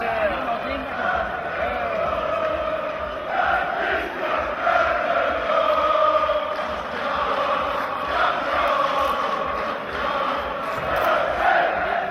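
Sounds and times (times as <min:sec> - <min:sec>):
people chanting: 0:00.0 - 0:12.0.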